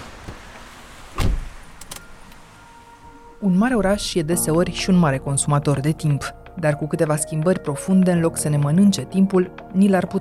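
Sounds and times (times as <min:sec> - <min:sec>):
car door shutting: 0:00.0 - 0:02.6
speech: 0:03.4 - 0:10.2.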